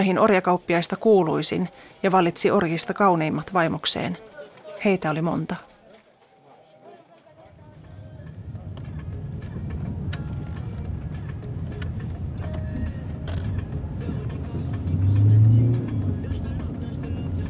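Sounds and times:
speech: 0.0 - 5.7
car driving along a route near Ouidah: 7.6 - 17.4.

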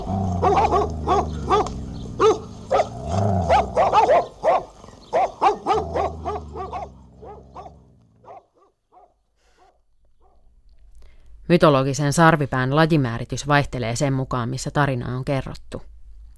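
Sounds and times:
hunting dogs growling low: 0.0 - 8.6
pack of hunting dogs barking in pursuit: 0.0 - 10.4
speech: 0.4 - 1.4, 11.5 - 16.0.

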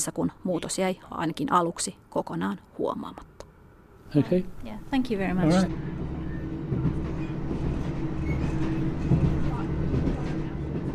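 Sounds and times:
speech: 0.0 - 3.3, 4.1 - 6.2
small local passenger train rumbling along at steady speed: 4.6 - 10.9
faint rhythmic train wheel clatter: 6.7 - 10.9.

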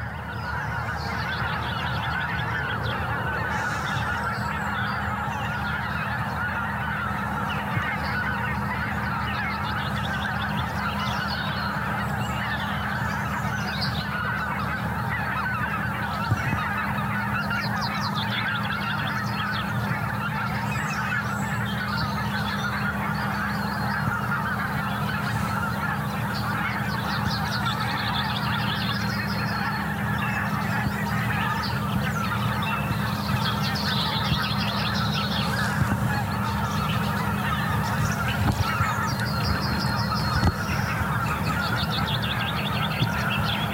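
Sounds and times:
large flock of geese honking: 0.0 - 43.7.

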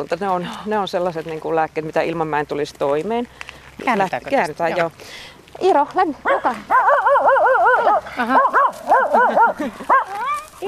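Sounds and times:
speech: 0.0 - 10.2
person imitating a dog barking at an approaching man: 6.3 - 10.6
laughter: 7.7 - 10.3.

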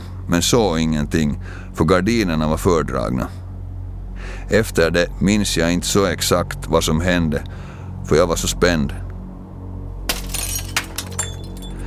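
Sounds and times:
low steady hum: 0.0 - 11.8
speech: 0.3 - 3.4, 4.5 - 9.0
glass shards falling and tinkling: 10.1 - 11.8
glass window pane smashing: 10.1 - 11.8.

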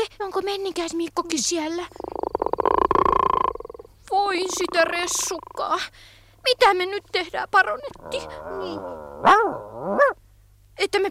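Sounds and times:
speech: 0.2 - 2.1, 4.3 - 10.2, 10.8 - 11.0
chorus of frogs croaking: 1.8 - 10.0.

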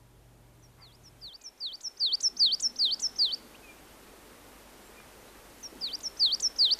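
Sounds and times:
faint background hiss: 0.0 - 6.7
coal tit singing high two-note phrases: 0.6 - 3.4, 5.6 - 6.7.

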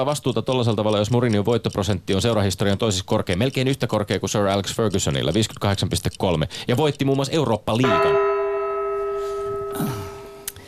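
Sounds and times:
speech: 0.0 - 8.3, 9.8 - 10.0
struck gong ringing: 7.8 - 10.5.

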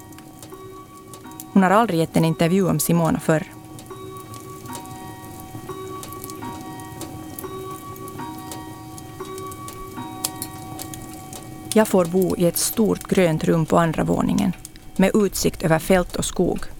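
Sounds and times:
cuckoo clock on the wall ticking: 0.0 - 15.5
fire crackling and popping in a house: 0.0 - 16.7
speech: 1.5 - 3.6, 11.8 - 16.7.

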